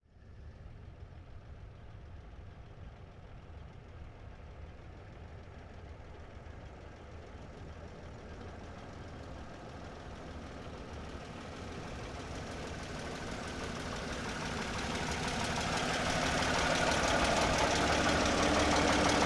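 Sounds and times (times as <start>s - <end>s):
1927 sedan engine idling: 7.0s - 19.2s.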